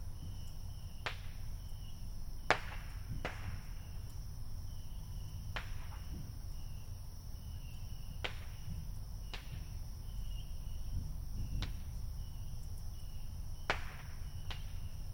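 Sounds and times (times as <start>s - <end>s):
insects keeping up a high shrill buzz: 0.0s - 15.1s
neighborhood fireworks popping and cracking on the Fourth of July: 1.0s - 1.5s, 2.5s - 3.9s, 5.5s - 6.3s, 8.2s - 9.8s, 11.0s - 12.0s, 13.6s - 15.0s.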